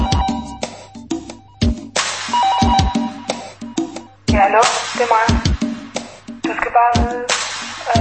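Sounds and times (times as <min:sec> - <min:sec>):
phone ringing with a bright electronic ringtone: 0:00.0 - 0:04.2
speech: 0:04.5 - 0:05.6, 0:06.8 - 0:07.3.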